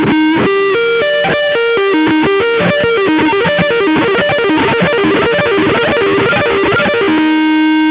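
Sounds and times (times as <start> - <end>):
guitar sweep picking: 0.0 - 7.8.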